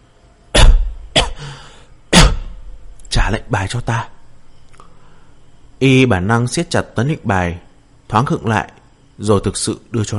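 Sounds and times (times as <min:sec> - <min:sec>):
wounded woman coughing harshly: 0:00.6 - 0:01.4, 0:02.1 - 0:02.6
speech: 0:03.2 - 0:04.2, 0:05.8 - 0:10.1.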